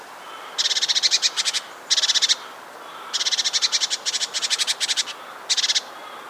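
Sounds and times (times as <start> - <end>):
quiet hiss: 0.0 - 6.2
great tit Parus major giving harsh buzzy chattering calls: 0.4 - 6.2.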